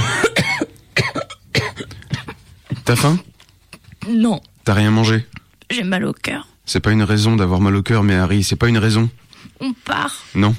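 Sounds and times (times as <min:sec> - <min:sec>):
woman coughing under blankets in a cabin: 0:00.0 - 0:02.8
speech: 0:02.9 - 0:03.3, 0:04.0 - 0:10.5.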